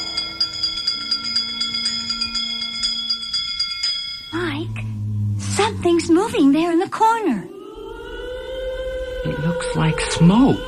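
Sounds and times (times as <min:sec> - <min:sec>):
bell ringing: 0:00.0 - 0:05.9
speech: 0:05.6 - 0:07.5, 0:09.2 - 0:10.6.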